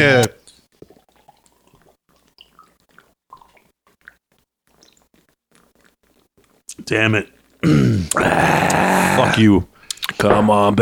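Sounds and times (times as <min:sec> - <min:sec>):
speech: 0:00.0 - 0:00.4, 0:06.8 - 0:10.7
person gulping down a pint of Guinness: 0:00.2 - 0:06.8, 0:07.6 - 0:09.2.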